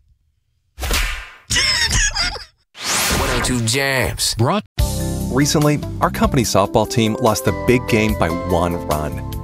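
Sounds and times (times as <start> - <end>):
loud slap sound effects with whip-like swish: 0.8 - 1.5, 2.8 - 3.7
speech: 3.7 - 9.3.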